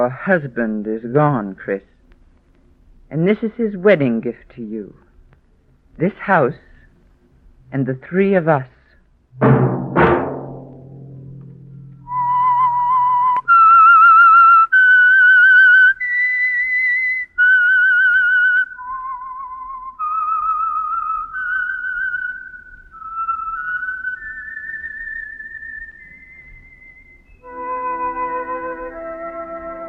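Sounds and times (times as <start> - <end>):
speech: 0.2 - 1.9, 3.1 - 5.0, 6.0 - 6.6, 7.7 - 8.8, 9.4 - 9.8
orchestral music hit: 9.4 - 12.4
loud whistled solo melody: 11.7 - 29.8.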